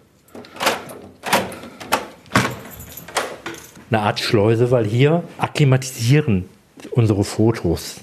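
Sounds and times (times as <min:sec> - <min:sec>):
doors being opened: 0:00.3 - 0:03.8
speech: 0:03.9 - 0:08.0.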